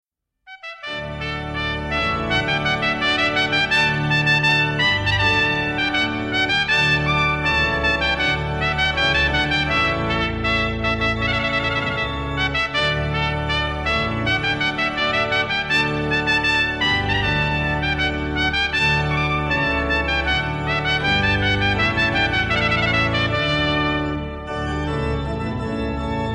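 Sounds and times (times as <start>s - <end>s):
trumpet playing a rondeau: 0.5s - 26.2s.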